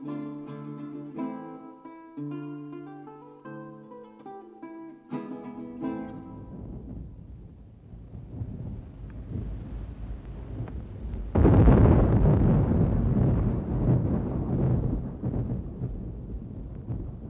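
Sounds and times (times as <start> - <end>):
thunder rumbling in an autumn thunderstorm: 5.8 - 17.2.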